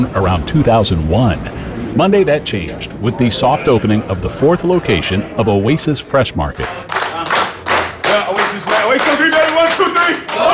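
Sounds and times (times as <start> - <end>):
speech: 0.0 - 7.0
small group of staff applauding: 6.6 - 10.5
voices cheering and calling out: 6.7 - 10.5.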